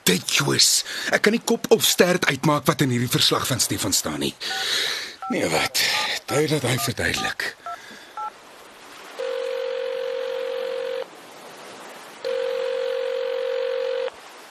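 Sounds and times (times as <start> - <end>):
speech: 0.1 - 7.6
short beep from a phone: 6.3 - 8.3, 9.2 - 11.1, 12.3 - 14.1.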